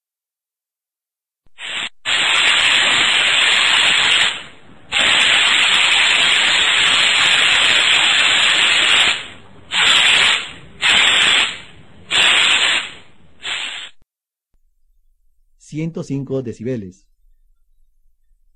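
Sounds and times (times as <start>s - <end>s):
spray paint sprayer hissing at about 98 decibels: 1.5s - 14.0s
speech: 15.8s - 17.1s.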